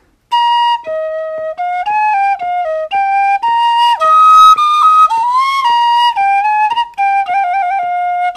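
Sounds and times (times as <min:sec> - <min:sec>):
tin whistle playing a lively military tune: 0:00.3 - 0:08.3.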